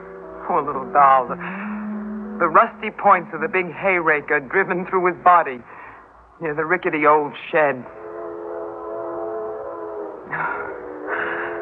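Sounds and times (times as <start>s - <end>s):
speech: 0.5s - 1.7s, 2.4s - 5.8s, 6.4s - 8.0s
train whistle: 1.3s - 3.6s, 7.8s - 11.6s.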